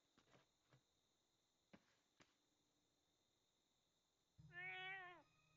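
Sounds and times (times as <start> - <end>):
cat meowing: 4.5 - 5.3.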